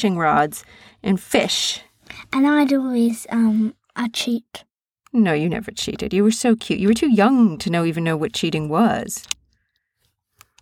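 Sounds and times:
speech: 0:00.0 - 0:09.4
found badge clicking: 0:09.2 - 0:09.7, 0:10.4 - 0:10.6.

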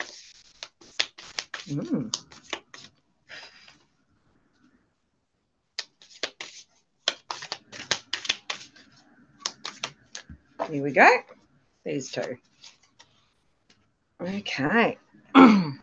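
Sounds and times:
shuffling of a deck of oracle cards: 0:00.0 - 0:03.9, 0:05.8 - 0:10.7, 0:12.1 - 0:13.8
speech: 0:01.7 - 0:02.4, 0:10.7 - 0:12.5, 0:14.2 - 0:15.8.

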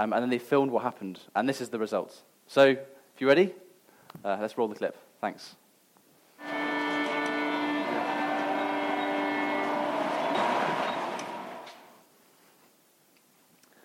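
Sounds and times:
speech: 0:00.0 - 0:05.6
subway train rushing through a station in the Washington subway: 0:06.4 - 0:12.0.

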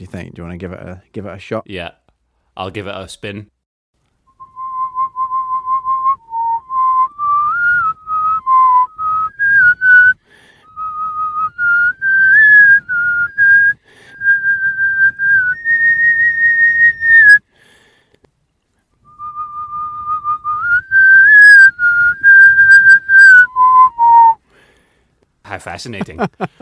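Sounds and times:
speech: 0:00.0 - 0:02.0, 0:02.6 - 0:03.6, 0:25.6 - 0:26.6
person whistling a melody: 0:04.3 - 0:17.4, 0:19.1 - 0:24.4.

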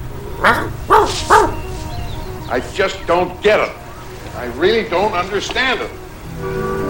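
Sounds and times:
stray dog barking: 0:00.2 - 0:01.9
speech: 0:00.4 - 0:00.8, 0:02.5 - 0:03.8, 0:04.4 - 0:06.7.

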